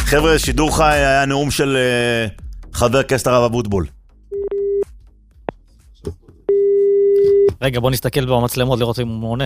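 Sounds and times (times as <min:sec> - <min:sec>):
speech: 0:00.1 - 0:03.9, 0:07.6 - 0:09.4
telephone busy tone after a caller hangs up: 0:06.5 - 0:07.5.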